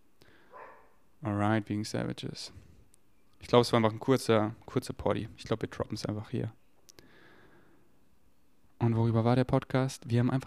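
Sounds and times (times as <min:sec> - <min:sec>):
dog barking: 0:00.5 - 0:01.0
speech: 0:01.2 - 0:02.6, 0:03.4 - 0:06.6, 0:08.8 - 0:10.4.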